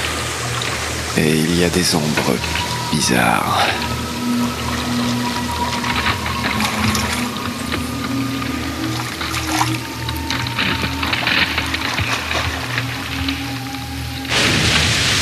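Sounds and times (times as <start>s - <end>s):
water dripping from melting floating icebergs: 0.0s - 14.4s
low constant droning hum: 0.0s - 15.2s
speech: 1.2s - 5.2s.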